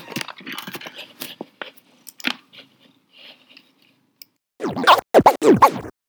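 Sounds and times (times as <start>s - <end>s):
big heavy ginger cat scratching at the microphone: 4.6s - 5.9s.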